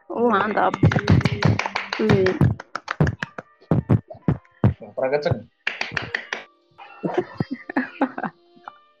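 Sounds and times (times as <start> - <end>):
speech: 0.1 - 2.6, 5.0 - 5.5
sharp hand claps: 0.4 - 4.8, 5.6 - 6.5
laughter: 6.9 - 8.4.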